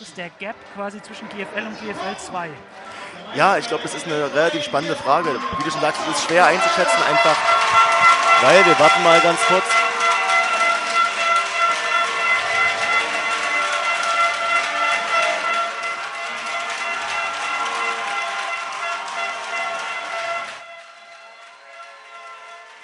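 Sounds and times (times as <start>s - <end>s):
loud dense crowd noise: 0.0s - 22.8s
speech: 0.1s - 9.8s
blaring plastic horns: 4.6s - 22.8s
rapid clattering of hand clappers: 4.8s - 20.7s.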